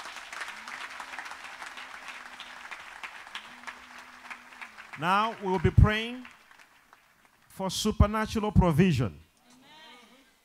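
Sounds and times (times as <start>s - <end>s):
audience clapping hands: 0.0s - 8.2s
speech: 5.0s - 6.4s, 7.6s - 9.2s.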